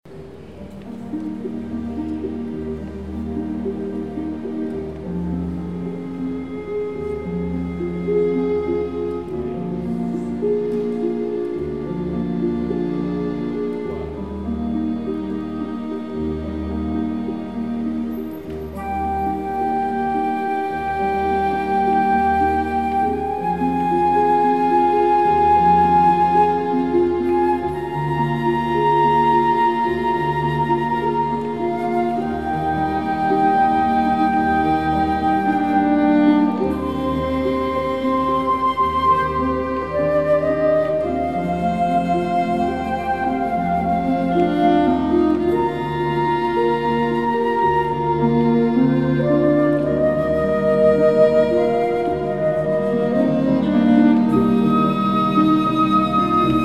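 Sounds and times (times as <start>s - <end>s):
solo flute: 0.0s - 56.6s
strings: 0.0s - 56.6s
piano: 0.1s - 56.6s.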